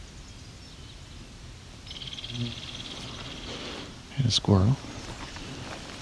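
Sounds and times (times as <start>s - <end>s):
American goldfinch flight calls over a swamp: 1.9s - 3.9s
speech: 2.3s - 2.6s, 4.2s - 4.9s.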